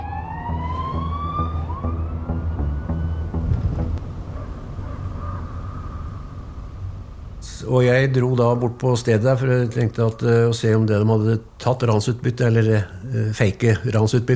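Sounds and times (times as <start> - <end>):
police car sirens wailing in pursuit through forests of Østerdalen Norway: 0.0 - 7.4
rumbling car engine: 0.0 - 13.5
road noise: 0.0 - 13.6
speech: 7.7 - 14.3.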